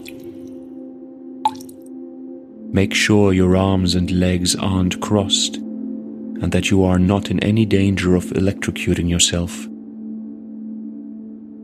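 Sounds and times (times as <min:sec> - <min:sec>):
water drop from a dripping faucet plinking into a bathtub: 0:00.0 - 0:00.6, 0:01.5 - 0:01.9
speech: 0:02.7 - 0:05.7, 0:06.4 - 0:09.7.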